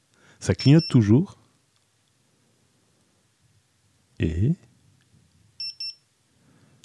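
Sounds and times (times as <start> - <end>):
speech: 0.4 - 1.4, 4.2 - 4.6
fall detector device high-pitched electronic beeps: 5.6 - 6.0.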